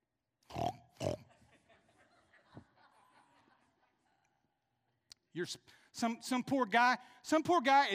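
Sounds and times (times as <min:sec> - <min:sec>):
pig oinking and grunting: 0:00.5 - 0:01.2
laughter: 0:01.2 - 0:04.7
speech: 0:05.4 - 0:07.9.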